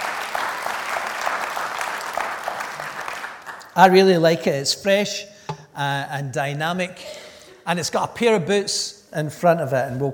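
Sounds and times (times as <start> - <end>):
church audience clapping: 0.0 - 4.0
speech: 3.8 - 10.1.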